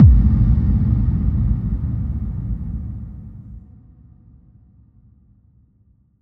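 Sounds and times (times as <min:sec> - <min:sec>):
impact sound effect: 0:00.0 - 0:03.6.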